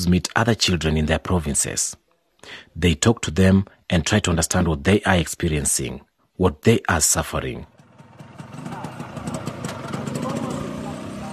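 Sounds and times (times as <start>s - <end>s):
speech: 0.0s - 7.7s
moped engine running: 7.7s - 11.3s
faint indistinct voices: 8.4s - 11.3s.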